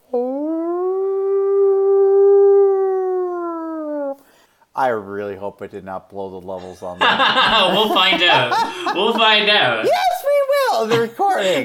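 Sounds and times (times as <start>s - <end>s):
person imitating a wolf howl: 0.0s - 4.2s
speech: 4.8s - 10.1s, 10.8s - 11.6s
laughter: 6.8s - 9.7s.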